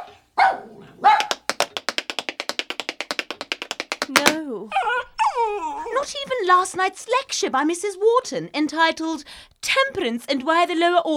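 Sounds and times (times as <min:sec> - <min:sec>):
dog barking: 0:00.0 - 0:01.4
sharp tapping: 0:01.2 - 0:04.4
speech: 0:06.0 - 0:11.1.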